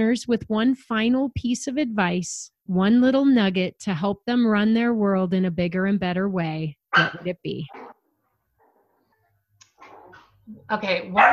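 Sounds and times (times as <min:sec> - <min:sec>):
speech: 0:00.0 - 0:07.8, 0:10.5 - 0:11.3
puppies yapping: 0:07.0 - 0:08.9, 0:11.2 - 0:11.3.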